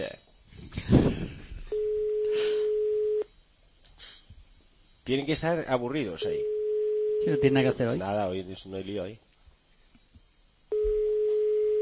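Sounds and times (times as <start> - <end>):
telephone line tone while a call waits to connect: 1.7 - 3.3, 6.4 - 7.6, 10.7 - 11.8
speech: 5.1 - 6.6, 7.2 - 9.2.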